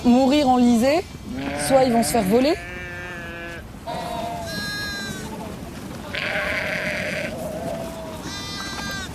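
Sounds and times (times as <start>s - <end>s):
speech: 0.0s - 2.8s
lambs bleating at turnout to pasture: 1.3s - 5.3s, 6.0s - 9.1s.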